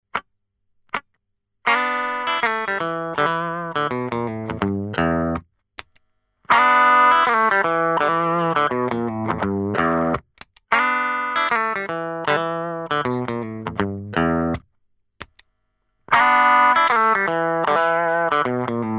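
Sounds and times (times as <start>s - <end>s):
guitar through Sardine Can compressor and rectifier effect: 1.6s - 5.5s, 6.5s - 14.6s, 16.1s - 18.9s.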